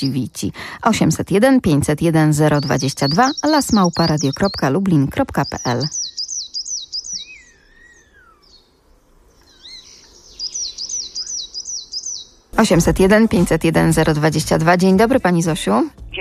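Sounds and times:
speech: 0.0 - 6.0, 12.6 - 16.2
coal tit singing: 0.0 - 8.7, 9.4 - 16.2
bird calls: 2.3 - 12.8.

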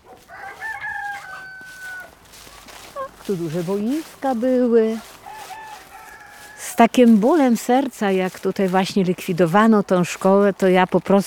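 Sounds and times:
rooster crowing: 0.0 - 6.9
speech: 3.3 - 5.1, 6.8 - 11.2.

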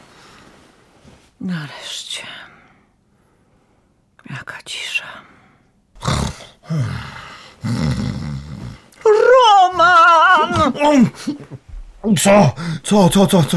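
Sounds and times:
speech: 1.4 - 2.5, 6.7 - 8.1, 10.6 - 13.5
person snoring loudly: 6.0 - 9.0
person groaning or mumbling: 6.0 - 11.2.

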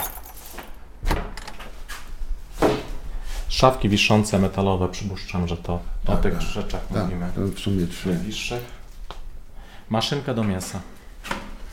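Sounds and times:
keys rattling and clinking: 0.0 - 0.8
speech: 3.5 - 8.8, 9.9 - 11.4.

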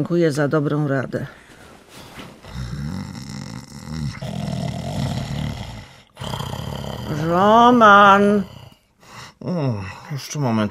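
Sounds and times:
speech: 0.0 - 2.0, 7.1 - 8.6, 9.4 - 10.6
loud rasping snoring: 2.5 - 8.9.

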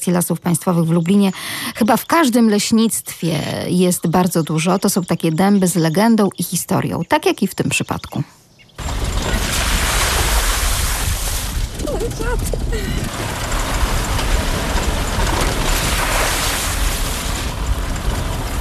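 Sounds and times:
speech: 0.0 - 9.1, 12.2 - 13.5
old off-road work car engine and rough road noise: 8.8 - 18.5.

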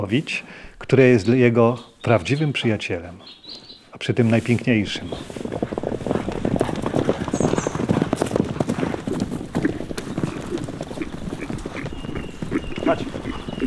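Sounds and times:
speech: 0.0 - 6.1
horse hooves clip-clopping: 3.5 - 13.6.

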